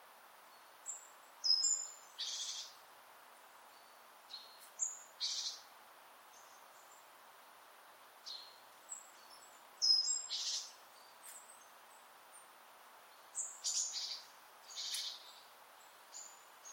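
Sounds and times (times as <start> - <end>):
faint background hiss: 0.0 - 16.7
Great tit calls: 0.9 - 2.8, 3.8 - 5.7, 8.2 - 11.8, 13.3 - 16.7.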